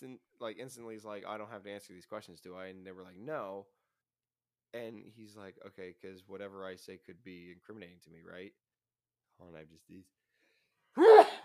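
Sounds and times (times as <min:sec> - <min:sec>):
speech: 0:00.1 - 0:03.8, 0:04.7 - 0:08.6, 0:09.4 - 0:10.2
person sneezing: 0:11.0 - 0:11.4.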